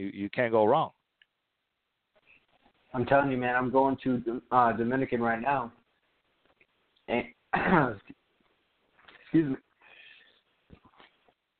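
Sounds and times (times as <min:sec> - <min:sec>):
speech: 0:00.0 - 0:01.0, 0:02.9 - 0:05.8, 0:07.1 - 0:08.2, 0:09.3 - 0:09.6
person coughing and spluttering after water went down the wrong pipe: 0:07.6 - 0:08.2.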